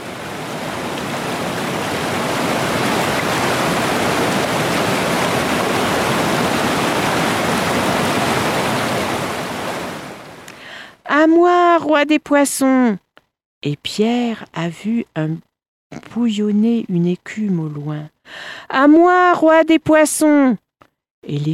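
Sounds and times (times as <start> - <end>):
flowing river water: 0.0 - 10.7
speech: 11.2 - 13.0, 13.6 - 20.6, 21.2 - 21.5.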